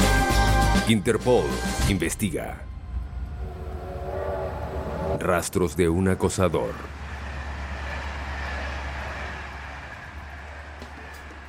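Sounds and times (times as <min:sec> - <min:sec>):
speech: 0:00.9 - 0:02.7, 0:05.1 - 0:07.0
night train speeding through the Loire Valley: 0:02.4 - 0:11.4.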